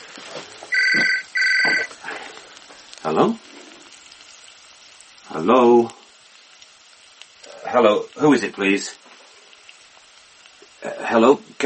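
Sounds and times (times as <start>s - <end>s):
telephone bell ringing in the middle of the night: 0.7s - 1.9s
speech: 3.1s - 3.5s, 5.4s - 6.0s, 7.7s - 9.1s, 11.1s - 11.6s.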